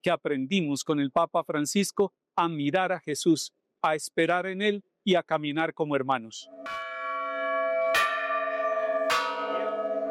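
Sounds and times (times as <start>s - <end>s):
speech: 0.0s - 6.9s
church bells pealing in the dioceses of Colombia in memory of a pope: 6.5s - 10.0s.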